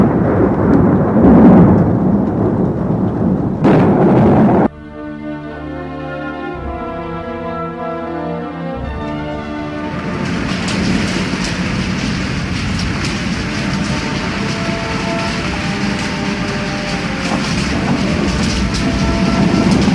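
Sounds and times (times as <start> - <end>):
heavy rain at night: 0.0 - 19.9
sustained droning musical tone: 4.7 - 19.9.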